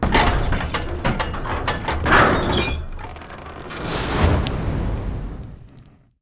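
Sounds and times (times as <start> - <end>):
catapult reloading: 0.0 - 5.9.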